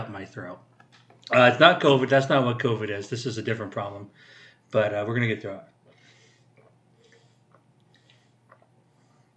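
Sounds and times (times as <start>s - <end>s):
speech: 0.0s - 0.7s, 1.3s - 5.7s
low steady hum: 0.0s - 9.3s
person gulping and swallowing water: 7.5s - 8.8s.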